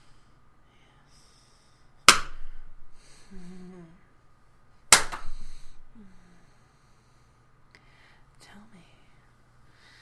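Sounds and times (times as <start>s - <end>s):
hand slapping bare buttocks: 2.0s - 2.6s, 4.9s - 5.6s
person moaning: 3.2s - 4.1s, 5.9s - 6.4s.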